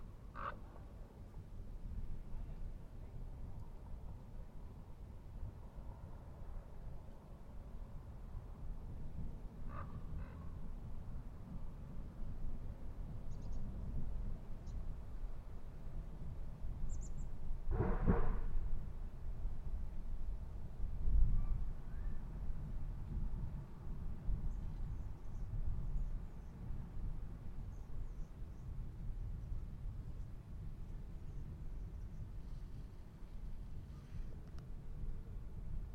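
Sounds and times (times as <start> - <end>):
steady low rumble of traffic at a manzanita barren: 0.0 - 35.9
brief faint bird calls: 0.3 - 0.8, 9.7 - 10.6.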